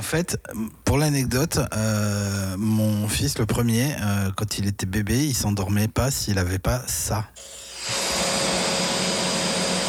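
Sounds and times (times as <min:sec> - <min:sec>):
speech: 0:00.0 - 0:08.0
vacuum cleaner running: 0:07.4 - 0:09.8.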